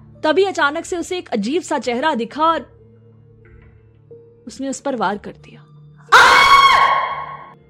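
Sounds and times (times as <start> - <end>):
speech: 0.2 - 2.8, 4.5 - 5.7
woman's loud high-pitched scream: 6.1 - 7.5.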